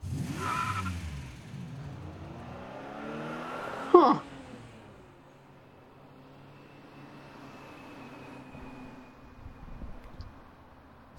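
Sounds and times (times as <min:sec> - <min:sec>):
tire squeal: 0:00.0 - 0:01.3, 0:06.2 - 0:09.9
car engines revving and pulling away: 0:00.0 - 0:08.7
speech: 0:04.0 - 0:04.3.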